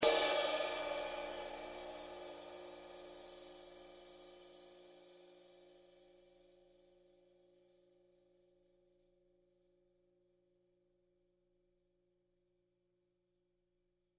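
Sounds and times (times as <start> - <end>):
20-inch custom ride cymbal: 0.0 - 6.1.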